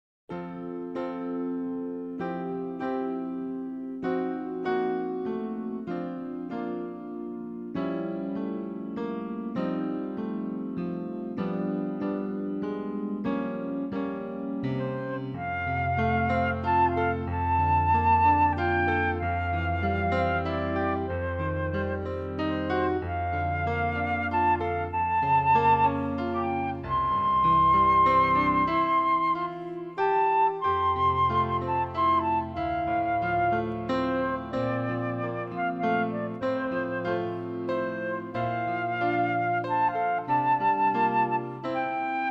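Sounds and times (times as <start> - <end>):
flutes: 0.3 - 10.8, 11.4 - 42.2.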